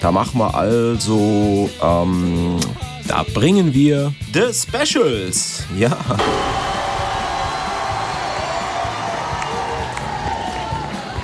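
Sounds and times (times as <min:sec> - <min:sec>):
speech: 0:00.0 - 0:06.8
crowd clapping: 0:06.2 - 0:11.2.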